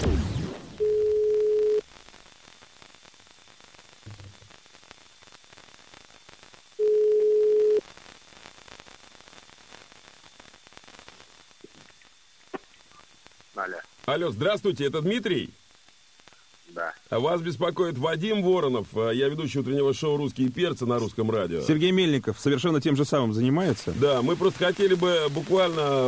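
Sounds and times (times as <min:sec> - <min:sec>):
faint telephone line hiss: 0:00.1 - 0:26.0
telephone ringback tone while placing a call from a radio morning show: 0:00.8 - 0:01.8, 0:06.8 - 0:07.8
speech: 0:13.6 - 0:15.6, 0:17.1 - 0:26.0.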